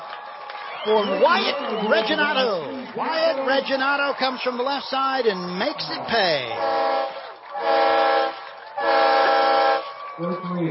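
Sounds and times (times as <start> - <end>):
speech: 0.8 - 8.2, 10.2 - 10.6
train whistle blowing: 6.6 - 9.8.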